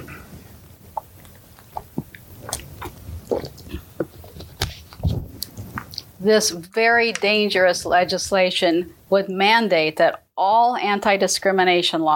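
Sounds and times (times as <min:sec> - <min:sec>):
person sipping water: 0:00.0 - 0:06.2
swallowing gulps of water: 0:00.0 - 0:06.2
speech: 0:06.2 - 0:12.1.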